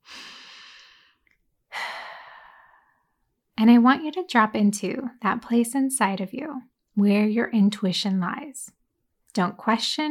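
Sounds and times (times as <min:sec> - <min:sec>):
sigh: 0:00.0 - 0:03.0
deep breath: 0:00.0 - 0:03.2
speech: 0:03.6 - 0:10.0.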